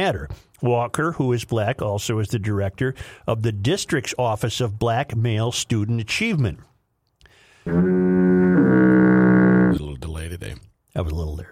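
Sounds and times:
speech: 0:00.0 - 0:06.7
loud deep buzzy foghorn blast: 0:07.7 - 0:09.8.

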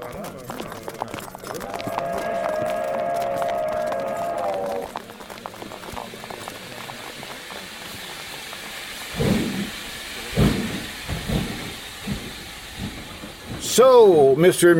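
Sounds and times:
steam locomotive chuffing as it pulls away: 0:00.0 - 0:14.7
steam hissing from a steam locomotive: 0:01.7 - 0:14.7
steam train whistle: 0:01.8 - 0:05.1
speech: 0:13.8 - 0:14.7.

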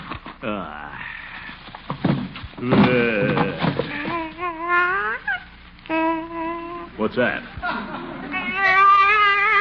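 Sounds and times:
speech: 0:00.4 - 0:01.1, 0:02.6 - 0:03.2, 0:07.0 - 0:07.9
baby crying inside a car: 0:03.4 - 0:07.0, 0:08.2 - 0:09.5.

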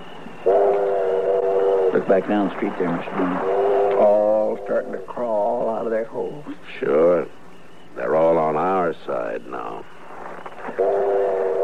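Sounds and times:
arriving train whistle: 0:00.0 - 0:05.3, 0:10.7 - 0:11.6
speech: 0:02.0 - 0:07.4, 0:08.0 - 0:10.0.

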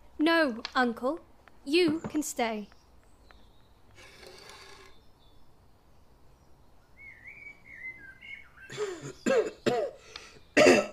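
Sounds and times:
speech: 0:00.2 - 0:02.8
thin whistling tone: 0:07.0 - 0:08.7
person coughing harshly: 0:08.7 - 0:10.0, 0:10.6 - 0:10.9.

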